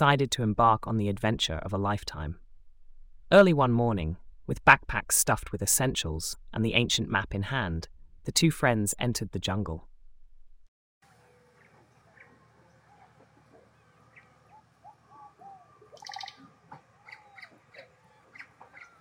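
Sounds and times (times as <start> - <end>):
speech: 0.0 - 2.4, 3.3 - 9.9
jungle birds calling and chirping: 11.2 - 18.9
monkeys chattering: 12.0 - 18.9
parrots squawking: 12.1 - 18.9.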